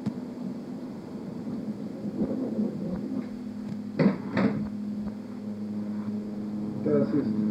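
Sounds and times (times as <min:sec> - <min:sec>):
steady low mechanical hum: 0:00.0 - 0:07.4
door opening and shutting: 0:04.0 - 0:04.7
speech: 0:07.0 - 0:07.4.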